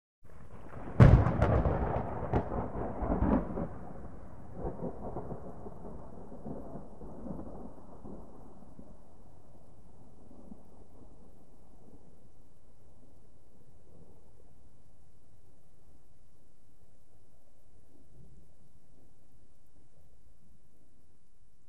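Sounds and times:
medium distant thunder: 0.5 - 9.1.

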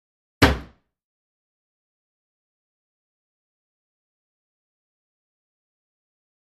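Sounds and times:
wooden locker in a locker room: 0.4 - 0.8.

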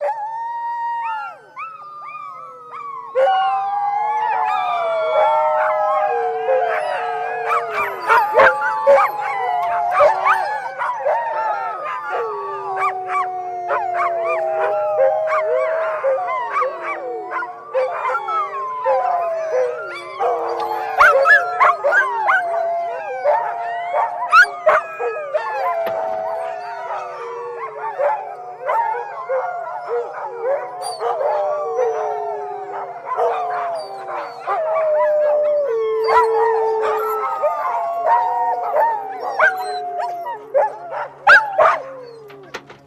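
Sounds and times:
dogs howling: 0.0 - 42.8.

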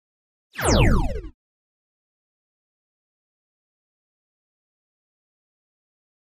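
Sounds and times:
laser blast tremolo: 0.6 - 1.3.

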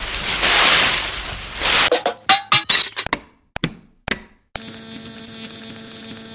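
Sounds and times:
tree falling and tipping over: 0.0 - 2.1.

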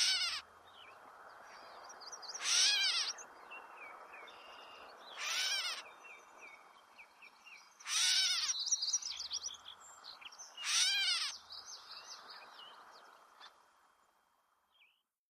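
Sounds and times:
catbird calling with wailing nasal mews: 0.0 - 0.4, 2.4 - 3.2, 5.2 - 5.8, 7.8 - 8.6, 10.6 - 11.4.

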